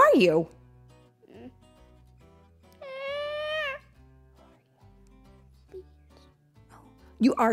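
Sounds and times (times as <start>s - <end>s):
soft steady music: 0.0s - 7.5s
speech: 0.2s - 0.6s, 7.2s - 7.5s
cat meowing: 2.8s - 3.8s.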